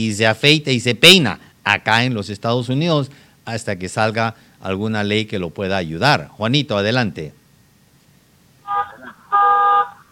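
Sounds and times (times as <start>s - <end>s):
speech: 0.0s - 7.4s
car horn honking: 8.7s - 10.1s.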